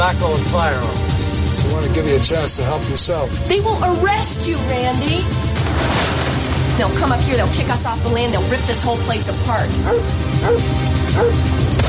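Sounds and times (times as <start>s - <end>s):
speech: 0.1s - 1.0s, 1.7s - 11.8s
dog barking: 9.8s - 11.4s.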